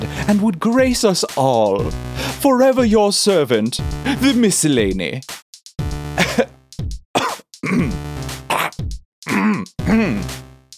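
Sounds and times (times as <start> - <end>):
speech: 0.3 - 5.4
person clearing throat: 6.2 - 6.5, 7.2 - 10.3
person coughing: 6.2 - 6.5, 7.2 - 10.3.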